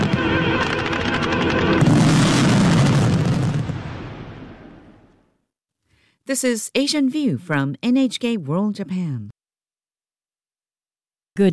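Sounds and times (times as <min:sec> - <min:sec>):
dense barrage of fireworks exploding: 0:00.0 - 0:05.1
speech: 0:06.3 - 0:09.4.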